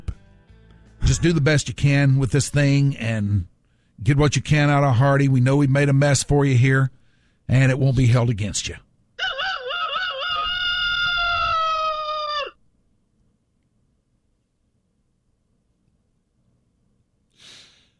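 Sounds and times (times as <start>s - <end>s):
speech: 1.1s - 8.8s
rooster crowing: 9.2s - 12.6s
breathy puff of noise: 17.3s - 17.9s.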